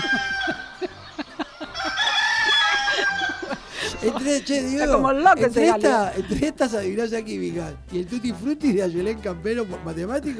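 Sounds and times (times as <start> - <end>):
rooster crowing: 0.0 - 3.8
faint farmyard noise: 0.0 - 5.0
laughter: 0.0 - 6.8
speech: 4.2 - 10.3.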